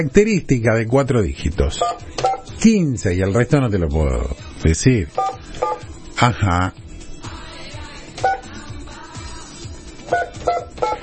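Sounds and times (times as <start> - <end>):
speech: 0.0 - 5.3, 6.2 - 6.8
telephone keypad dual-tone beeps as a number is dialed: 1.8 - 2.5, 5.2 - 5.9, 10.1 - 11.0.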